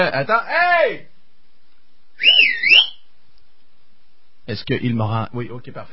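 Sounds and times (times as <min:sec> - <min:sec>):
speech: 0:00.0 - 0:01.1, 0:04.5 - 0:05.9
loud piercing human whistle swooping in pitch: 0:02.2 - 0:03.0.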